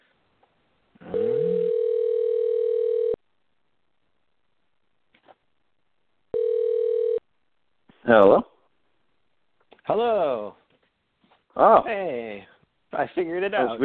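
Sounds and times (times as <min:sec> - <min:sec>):
telephone line tones on an outgoing call: 0:01.1 - 0:03.2, 0:06.4 - 0:07.2
speech: 0:08.1 - 0:08.5, 0:11.8 - 0:13.8.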